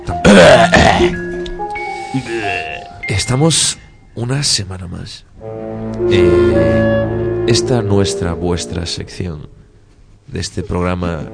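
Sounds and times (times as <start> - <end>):
speech: 0.1 - 1.3, 2.1 - 9.6, 10.3 - 11.3
loud rough throat clearing: 0.3 - 1.2.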